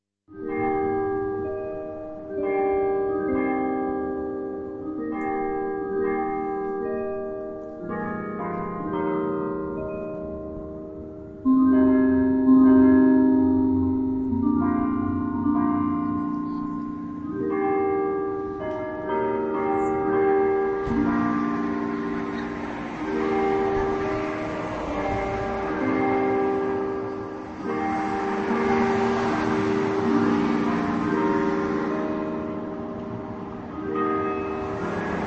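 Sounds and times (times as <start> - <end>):
tower bells playing a slow stately Western melody: 0.3 - 35.2.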